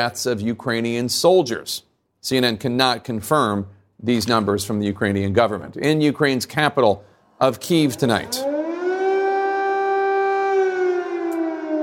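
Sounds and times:
speech: 0.0 - 8.5
air raid siren wailing over a city: 7.8 - 11.8.

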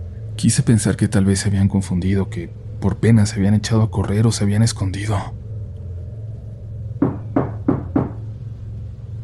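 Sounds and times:
low steady hum: 0.0 - 9.2
speech: 0.4 - 5.4
firm insistent knocking on a wooden door: 7.0 - 8.2.

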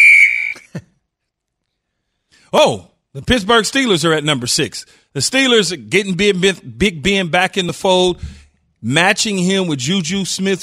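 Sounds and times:
referee's whistle blast: 0.0 - 0.7
speech: 2.5 - 10.6.

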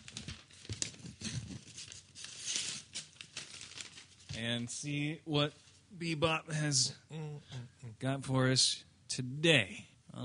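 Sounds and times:
paper envelope being torn open: 0.1 - 4.3
speech: 4.4 - 10.2.

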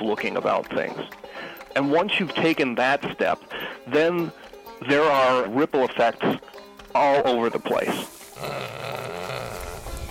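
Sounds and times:
speech: 0.0 - 8.8
pig grunting and snuffling: 8.3 - 10.1.

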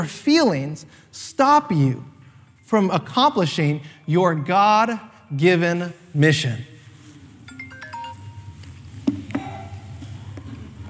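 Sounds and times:
speech: 0.0 - 2.1, 2.7 - 6.7
phone ringtone of bright electronic notes: 7.5 - 8.6.

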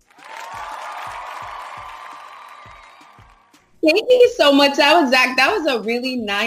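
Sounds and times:
crowd applause and cheering: 0.0 - 3.8
steady low rhythmic thumps: 0.0 - 4.5
speech: 3.8 - 6.4.

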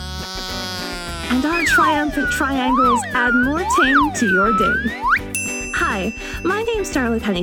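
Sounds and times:
kazoo buzzing: 0.0 - 5.3
speech: 1.3 - 5.2, 6.0 - 7.4.

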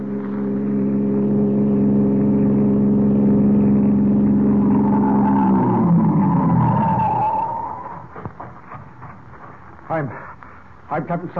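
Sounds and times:
passing car engine humming on a road: 0.0 - 11.3
faint tire squeal as car brakes: 3.7 - 9.0
speech: 11.0 - 11.3.

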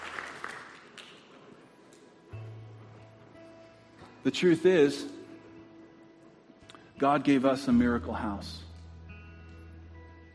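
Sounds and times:
audience clapping: 0.0 - 2.2
speech: 4.2 - 5.2, 7.0 - 8.7.

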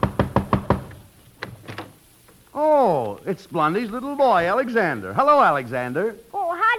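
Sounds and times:
firm knocking on a wooden door: 0.0 - 1.0
speech: 2.6 - 6.3.

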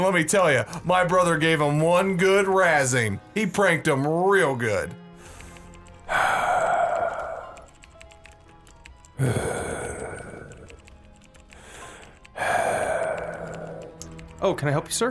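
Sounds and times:
speech: 0.0 - 5.0, 6.1 - 6.6, 9.2 - 9.6, 14.4 - 15.0
heavy rasping breathing: 5.1 - 7.9, 9.1 - 14.3.

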